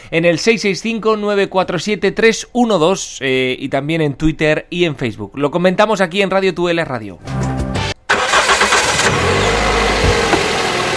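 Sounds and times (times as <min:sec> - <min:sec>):
speech: 0:00.1 - 0:07.4
car engine starting and running: 0:08.0 - 0:10.9.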